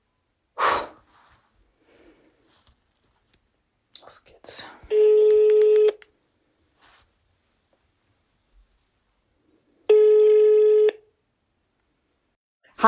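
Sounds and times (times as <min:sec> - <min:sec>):
telephone ringing tone on an outgoing call: 0:04.9 - 0:06.0, 0:09.9 - 0:11.0.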